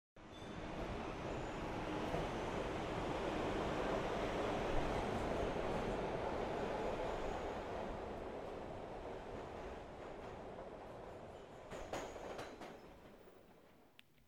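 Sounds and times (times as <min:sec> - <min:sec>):
subway train rumbling along the tracks: 0:00.2 - 0:13.5
sharp uneven clanks and rattles: 0:11.6 - 0:13.3.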